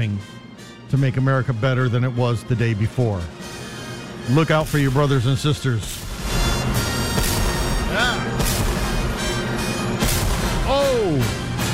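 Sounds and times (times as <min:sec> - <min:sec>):
constant roar of noise: 0:00.0 - 0:11.7
speech: 0:00.2 - 0:03.4, 0:04.3 - 0:06.1
heavy booms of cannon fire: 0:06.1 - 0:09.2, 0:10.0 - 0:10.7.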